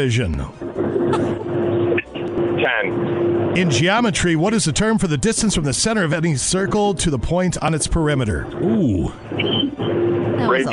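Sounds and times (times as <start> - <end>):
speech: 0.0 - 1.4, 2.6 - 10.7
truck engine droning inside a moving truck: 0.0 - 10.7.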